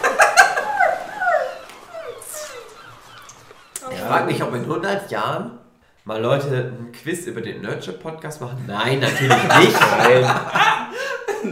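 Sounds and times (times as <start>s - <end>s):
laughter: 0.0s - 4.8s, 9.0s - 11.5s
gull crying in harsh descending squawks: 0.0s - 5.0s
speech: 4.1s - 10.7s.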